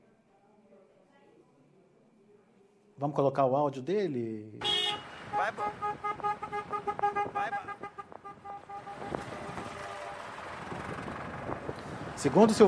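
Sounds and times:
speech: 3.0s - 4.7s, 5.4s - 7.7s, 12.2s - 12.6s
wind: 3.0s - 12.6s
vehicle horns of a protest motorcade honking on a highway: 4.6s - 10.4s
traffic rumble of cars, tractors, trucks and motorcycles: 4.6s - 12.6s.

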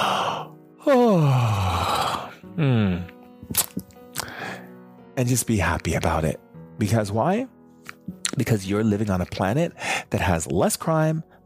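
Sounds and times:
person yawning: 0.0s - 3.1s
speech: 5.2s - 7.6s, 8.4s - 11.4s.

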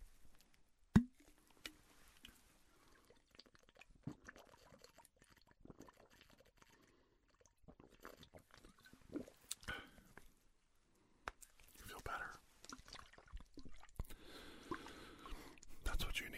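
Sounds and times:
sipping cool water with slurps and swallows: 1.0s - 10.3s, 11.4s - 15.9s
faint breathy whisper-like sounds: 11.7s - 12.5s, 14.1s - 16.3s.

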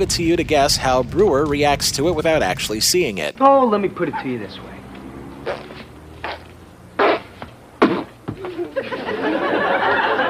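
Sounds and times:
speech: 0.0s - 4.7s
person blowing wet raspy mouth-fart noises: 5.4s - 8.5s
audience laughing: 8.4s - 10.2s.

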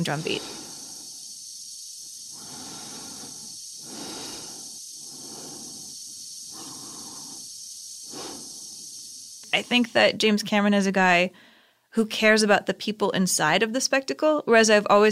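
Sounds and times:
speech: 0.0s - 0.6s, 9.6s - 15.1s
slow heavy breathing amplified inside a space helmet: 0.0s - 1.4s, 2.2s - 9.0s, 11.3s - 11.9s.

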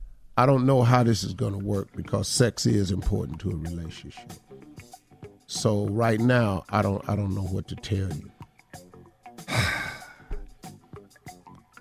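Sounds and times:
speech: 0.4s - 4.8s, 5.5s - 8.8s
heavy breathing close to the microphone: 9.5s - 10.5s.

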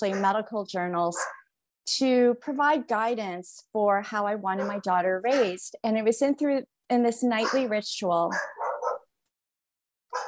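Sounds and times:
dog barking: 0.0s - 0.4s, 1.2s - 1.4s, 4.6s - 5.6s, 7.4s - 7.7s, 8.3s - 9.1s
speech: 0.0s - 8.6s.

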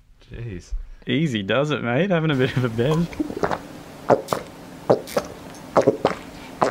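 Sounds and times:
faint low hum: 0.0s - 6.6s
speech: 0.3s - 3.5s
man gulping while drinking in a studio: 2.9s - 4.4s.

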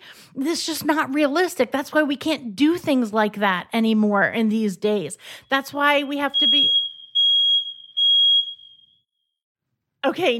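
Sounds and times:
speech: 0.4s - 6.8s, 10.0s - 10.3s
fire alarm beeps: 5.9s - 9.1s.

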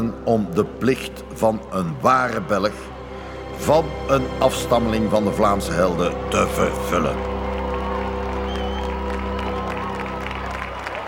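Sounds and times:
speech: 0.1s - 7.3s
audience clapping in a hall: 5.9s - 11.0s.

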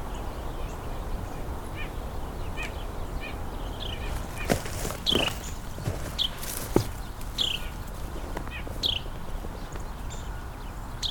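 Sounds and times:
Carolina Wren giving high descending beeping calls: 0.0s - 11.0s
rustling: 4.0s - 9.9s.

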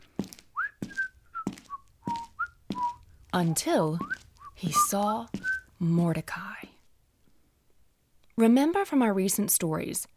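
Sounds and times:
soft footstep thuds while walking: 0.0s - 5.7s
person whistling a bright tune while walking: 0.6s - 3.0s
speech: 3.3s - 6.6s, 8.4s - 10.1s.

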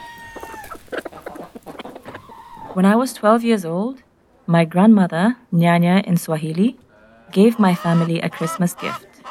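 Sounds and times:
chicken clucking: 0.0s - 3.0s, 6.9s - 9.2s
speech: 2.8s - 9.1s.

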